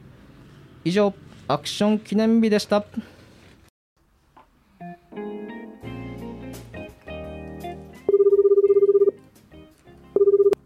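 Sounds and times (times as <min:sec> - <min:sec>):
speech: 0:00.8 - 0:03.2
telephone ringing in electronic bursts with a pulsing trill: 0:08.0 - 0:09.2, 0:10.2 - 0:10.6.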